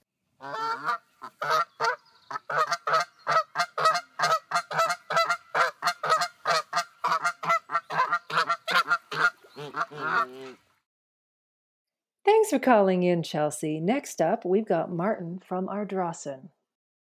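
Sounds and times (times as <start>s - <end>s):
goose honking: 0.4s - 10.6s
speech: 12.5s - 16.6s.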